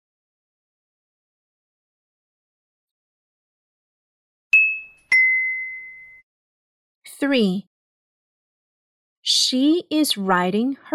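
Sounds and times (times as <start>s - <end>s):
bright bell ringing with a clear ding: 4.6s - 6.2s
speech: 7.2s - 7.7s, 9.5s - 10.9s.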